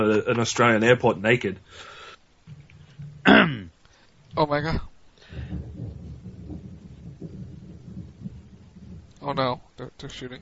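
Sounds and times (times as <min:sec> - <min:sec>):
speech: 0:00.0 - 0:02.0, 0:04.4 - 0:05.5, 0:09.2 - 0:10.4
deep rolling thunder rumbling during a storm: 0:02.5 - 0:10.4.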